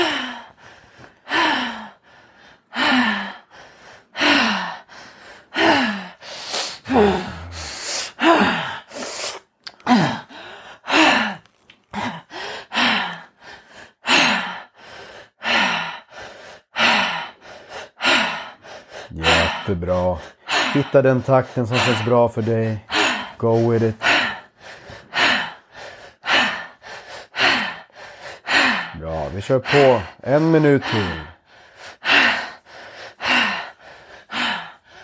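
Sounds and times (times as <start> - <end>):
deep rhythmic breathing exercise: 0.0 - 35.0
speech: 19.9 - 24.0, 29.4 - 31.3.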